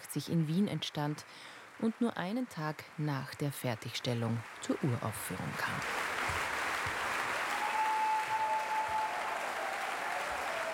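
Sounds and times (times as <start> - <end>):
speech: 0.1 - 6.4
large concert audience applauding: 3.8 - 10.7
faint whistle: 7.6 - 9.2.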